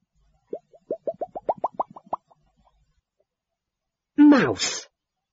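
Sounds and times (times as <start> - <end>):
watery plops and bloops: 0.5 - 2.4
speech: 4.4 - 4.9.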